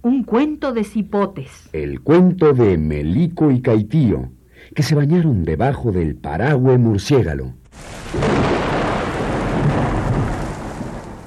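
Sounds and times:
speech: 0.0 - 8.5
deep rolling thunder from a big storm with lightning: 7.8 - 11.2.

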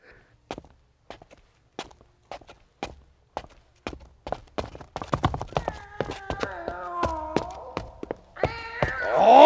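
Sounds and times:
footsteps down a staircase into a cellar: 0.5 - 9.2
cat meowing: 5.6 - 9.4.

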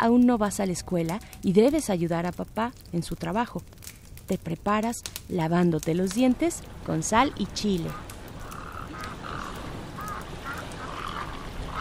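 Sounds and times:
speech: 0.0 - 8.1
constant rushing wind or water: 6.3 - 11.8
ducks quacking on a lake: 7.8 - 11.8.

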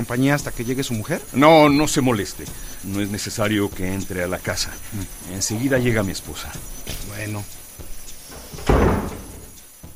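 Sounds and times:
speech: 0.0 - 7.6
faint bumps and shuffles: 3.8 - 9.9
door closing with a thud: 8.3 - 9.6.

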